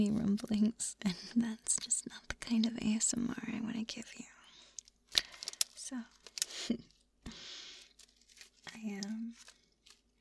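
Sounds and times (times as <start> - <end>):
speech: 0.0 - 4.4, 5.9 - 7.6, 8.8 - 9.5
plastic snack bag of aged white cheddar rice and corn puffs crinkling: 1.4 - 2.1, 4.7 - 10.1.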